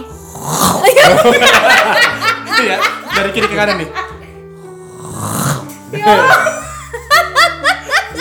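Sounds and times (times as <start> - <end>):
voice imitating snoring: 0.0 - 1.0, 4.9 - 5.8
laughter: 0.8 - 4.3, 6.2 - 8.1
speech: 1.0 - 4.0, 6.0 - 6.5.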